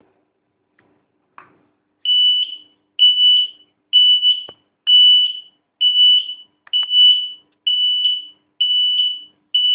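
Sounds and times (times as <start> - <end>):
220V buzzer: 2.1 - 9.7.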